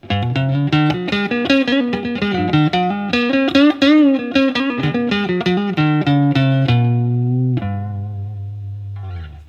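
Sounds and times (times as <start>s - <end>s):
Guild 2015 Newark Street X-175B guitar neck pickup clean tone: 0.0s - 9.4s.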